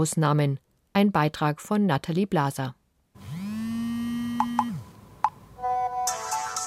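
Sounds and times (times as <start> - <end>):
speech: 0.0 - 2.8
mobile phone rising electronic hum: 3.2 - 5.0.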